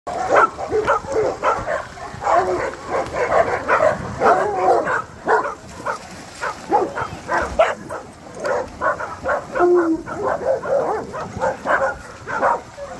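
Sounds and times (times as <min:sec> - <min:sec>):
many dogs barking: 0:00.1 - 0:12.9.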